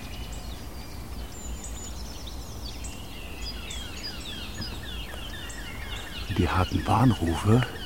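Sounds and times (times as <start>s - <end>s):
Eurasian blackcap singing bright fluty song phrases: 0.0s - 7.8s
speech: 6.4s - 7.8s.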